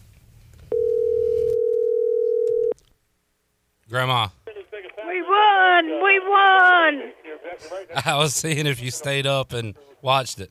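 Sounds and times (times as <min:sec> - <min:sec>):
telephone dial tone as a call is placed: 0:00.7 - 0:02.8
speech: 0:03.9 - 0:04.4, 0:05.4 - 0:10.5.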